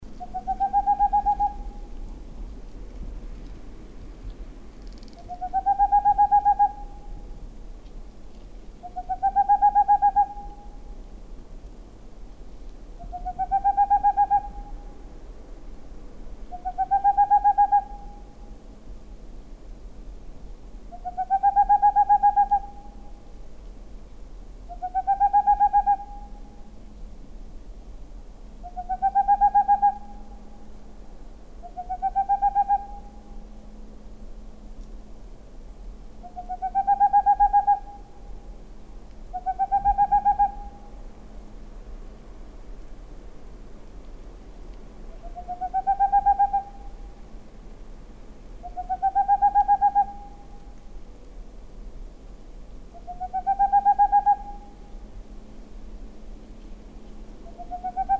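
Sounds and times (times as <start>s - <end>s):
Tengmalm's owl calling: 0.2s - 2.0s, 5.1s - 7.2s, 8.8s - 10.8s, 13.0s - 14.9s, 16.5s - 18.3s, 20.9s - 23.1s, 24.7s - 26.6s, 28.6s - 30.6s, 31.6s - 33.4s, 36.2s - 38.4s, 39.3s - 41.0s, 45.1s - 47.1s, 48.6s - 50.6s, 52.9s - 54.9s, 57.4s - 58.1s.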